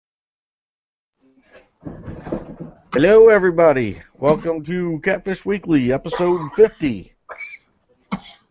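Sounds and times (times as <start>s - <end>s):
speech: 2.6s - 7.4s
harsh coughs: 6.0s - 8.4s.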